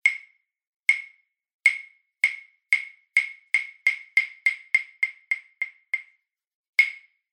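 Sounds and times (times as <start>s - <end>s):
hyoshigi wooden clappers striking: 0.1s - 0.3s, 0.9s - 6.1s, 6.8s - 7.1s.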